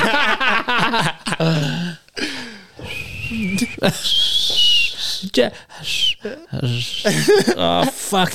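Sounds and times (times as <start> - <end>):
laughter: 0.0 - 2.4, 7.1 - 8.3
speech: 0.9 - 1.2, 5.4 - 8.3
woman trying to whistle: 3.0 - 5.2.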